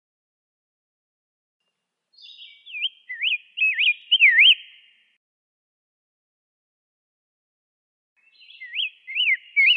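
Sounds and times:
rose-breasted grosbeak singing rich whistled notes: 2.1 - 5.2, 8.2 - 9.7.

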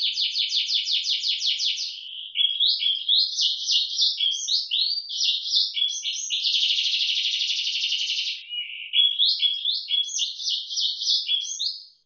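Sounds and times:
Atlantic canary trilling and warbling song: 0.0 - 12.0.

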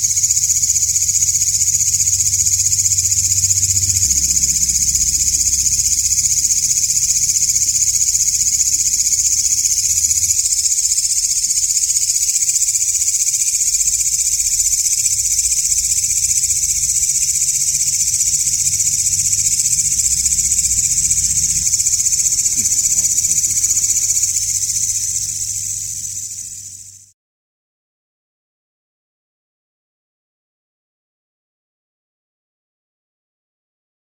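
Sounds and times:
katydid buzzing call: 0.0 - 27.1
faint low rumble: 1.8 - 9.6, 14.6 - 27.1.

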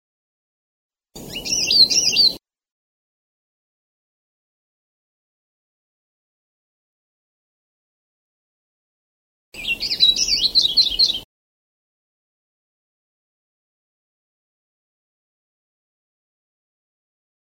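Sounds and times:
Sulawesi leaf warbler thin twittering song: 1.2 - 2.4, 9.6 - 11.3.

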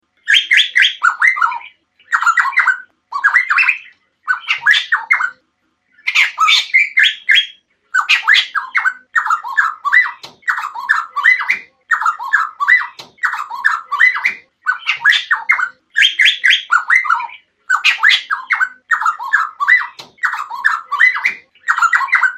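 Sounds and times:
cucak rotan singing: 0.2 - 22.3.

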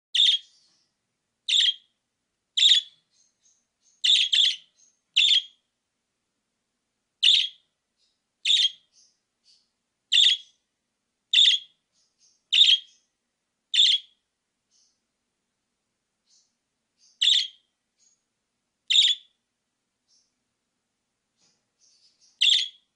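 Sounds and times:
parakeet chirping: 0.1 - 2.0, 2.6 - 5.7, 7.2 - 10.7, 11.3 - 13.1, 13.7 - 15.0, 16.3 - 18.2, 18.9 - 19.4, 21.8 - 22.9.

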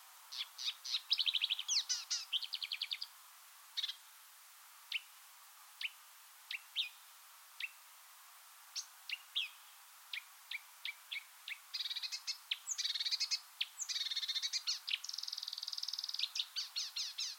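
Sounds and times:
marsh warbler song: 0.3 - 4.1, 4.9 - 5.2, 5.8 - 7.8, 8.7 - 17.3.

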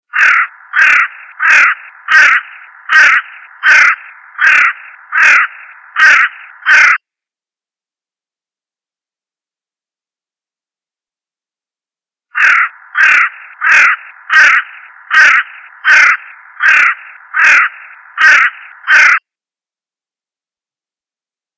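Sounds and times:
owl calling: 0.1 - 7.0, 12.4 - 19.2.

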